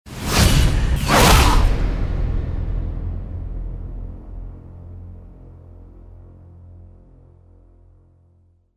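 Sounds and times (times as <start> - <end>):
double whoosh: 0.2 - 2.2.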